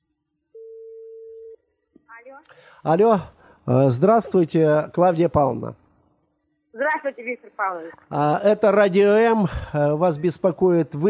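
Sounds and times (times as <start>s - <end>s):
telephone ringback tone of an outgoing call: 0.6s - 1.6s
speech: 2.2s - 5.8s, 6.8s - 11.0s.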